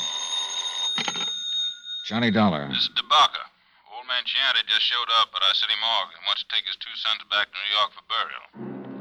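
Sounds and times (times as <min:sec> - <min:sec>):
telephone ringing with shrill electric bell: 0:00.0 - 0:02.4
speech: 0:02.1 - 0:03.4, 0:04.2 - 0:08.7.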